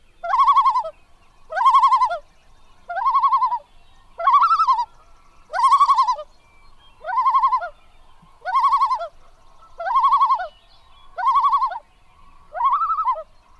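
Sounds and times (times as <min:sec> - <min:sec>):
common loon giving quavering tremolo calls in North America: 0:00.2 - 0:00.9, 0:01.5 - 0:06.3, 0:07.0 - 0:07.8, 0:08.4 - 0:13.3.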